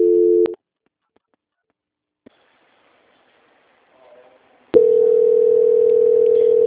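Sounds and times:
steady telephone line tone during a call transfer: 0:00.0 - 0:00.6, 0:04.8 - 0:06.6.

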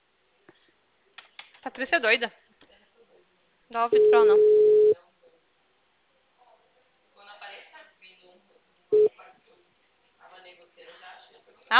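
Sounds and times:
speech: 0:01.6 - 0:02.4, 0:03.7 - 0:04.6
short loud telephone beep after a dropped call: 0:04.0 - 0:05.0.

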